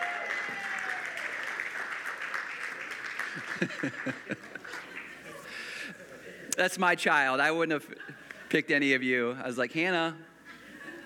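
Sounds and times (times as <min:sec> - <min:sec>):
room full of people applauding: 0:00.0 - 0:05.6
people chuckling: 0:03.3 - 0:06.4, 0:10.5 - 0:11.0
speech: 0:03.4 - 0:04.9, 0:06.6 - 0:10.3.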